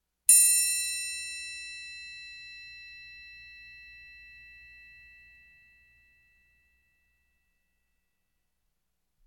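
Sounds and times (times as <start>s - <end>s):
large triangle ringing: 0.3s - 5.2s.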